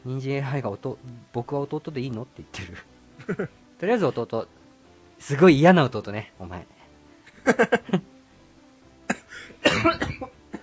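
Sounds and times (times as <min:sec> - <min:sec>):
speech: 0:00.0 - 0:04.6, 0:05.2 - 0:06.8, 0:07.4 - 0:08.1, 0:09.6 - 0:10.4
harsh coughing fit: 0:09.1 - 0:10.6.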